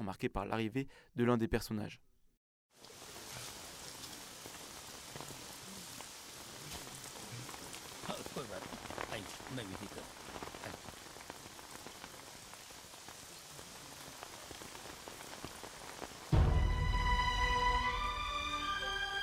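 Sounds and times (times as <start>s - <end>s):
speech: 0.0s - 2.1s, 9.2s - 10.3s
steady rain pattering on a hard surface: 2.7s - 19.2s.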